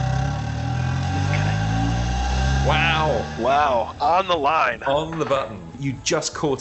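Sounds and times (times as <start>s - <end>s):
car engine firing up and revving: 0.0s - 4.8s
speech: 2.7s - 6.5s.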